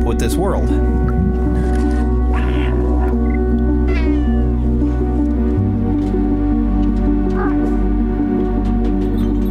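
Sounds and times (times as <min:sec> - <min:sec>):
droning game trailer music with low sustained tones: 0:00.0 - 0:09.4
cat meowing: 0:02.3 - 0:04.6.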